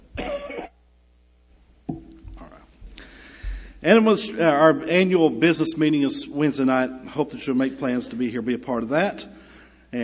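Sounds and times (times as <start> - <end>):
person clearing throat: 0.1 - 0.8
person coughing harshly: 0.1 - 0.8
speech: 3.8 - 10.0.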